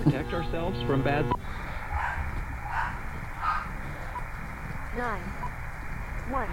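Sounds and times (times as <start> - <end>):
conversation: 0.0 - 6.5
speech: 0.1 - 1.7, 5.0 - 5.6, 6.3 - 6.5
dog barking: 1.9 - 3.8.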